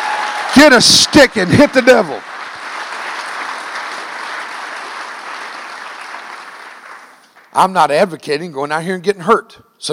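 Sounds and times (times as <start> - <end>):
large group applauding: 0.0 - 7.5
speech: 0.6 - 2.3, 7.6 - 9.9.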